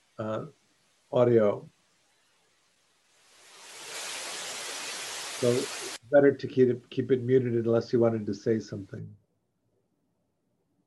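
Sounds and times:
broadband static hiss on an audio line: 0.0s - 9.1s
speech: 0.2s - 1.7s, 5.4s - 9.2s.

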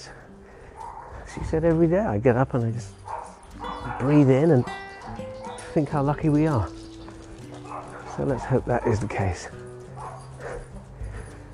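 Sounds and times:
dog barking: 0.7s - 1.3s, 3.0s - 5.8s, 7.0s - 10.8s
speech: 1.3s - 3.0s, 4.0s - 4.8s, 5.8s - 6.8s, 8.2s - 9.6s.

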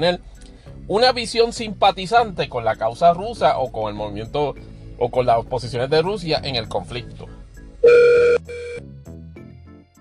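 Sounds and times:
speech: 0.0s - 8.2s
telephone ringing with a harmonic electronic tone: 7.8s - 8.8s.

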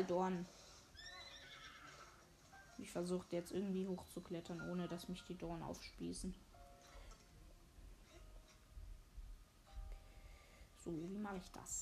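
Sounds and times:
speech: 0.0s - 0.6s, 2.8s - 6.5s, 10.8s - 11.8s
steady hiss: 0.0s - 11.8s
horse whinnying in a video game: 0.9s - 2.3s.

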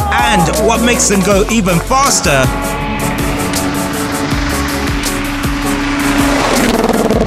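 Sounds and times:
rally car engines roaring at a rally: 0.1s - 7.2s
speech: 0.7s - 3.1s.

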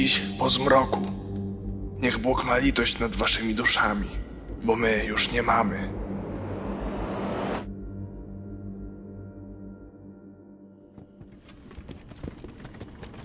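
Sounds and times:
speech: 0.0s - 1.2s, 2.0s - 6.0s
broad whoosh: 5.6s - 7.7s
barred wagon travelling over a bumpy forest road: 11.0s - 13.2s.

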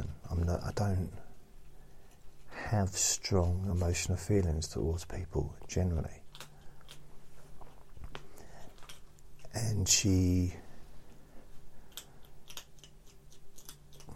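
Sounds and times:
speech: 0.5s - 1.3s, 2.7s - 6.2s, 9.5s - 10.6s
person chewing crunchy food: 6.2s - 9.5s, 11.7s - 14.1s.

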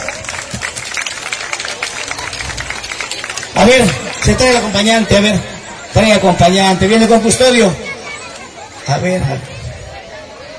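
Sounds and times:
audience applause welcoming a speaker: 0.0s - 6.3s
speech: 3.6s - 7.8s, 8.9s - 9.5s.

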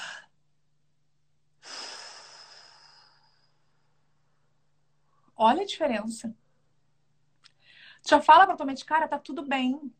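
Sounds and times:
deep controlled breathing of a person entering cold water: 1.6s - 4.3s
speech: 5.4s - 6.4s, 8.0s - 9.9s.

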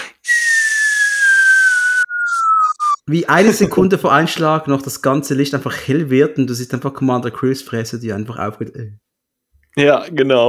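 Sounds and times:
person whistling a falling tone imitating an incoming grenade: 0.2s - 3.0s
speech: 3.1s - 9.0s, 9.8s - 10.4s.

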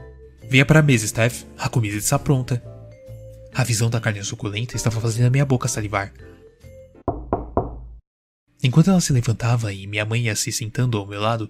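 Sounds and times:
speech: 0.4s - 2.7s, 3.6s - 6.4s, 8.6s - 11.4s
firm knocks on the door of a family home: 7.1s - 8.0s.

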